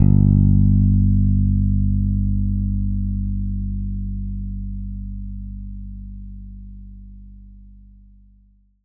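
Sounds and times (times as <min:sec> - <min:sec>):
country bass ending: 0:00.0 - 0:05.5.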